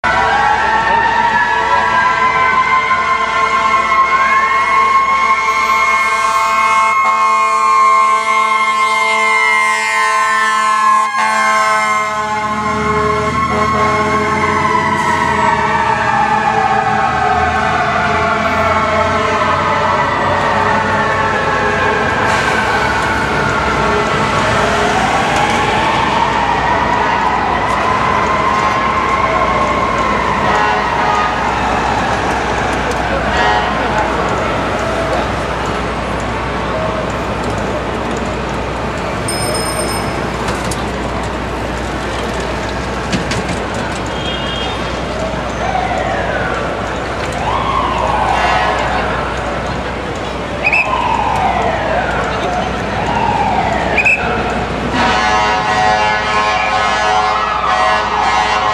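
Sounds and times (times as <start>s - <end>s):
fire truck siren in New York: 0.0s - 58.7s.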